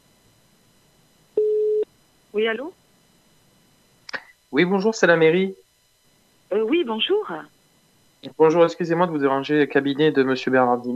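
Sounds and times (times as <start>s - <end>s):
telephone ringing tone as a call is placed: 1.4s - 1.8s
speech: 2.4s - 2.8s, 4.5s - 5.6s, 6.5s - 7.5s, 8.2s - 10.9s.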